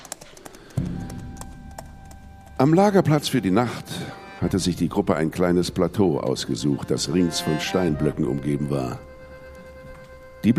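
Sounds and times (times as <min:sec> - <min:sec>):
hoofbeats of horses riding off at a trot: 0:00.0 - 0:04.6, 0:08.2 - 0:10.4
speech: 0:02.6 - 0:09.1.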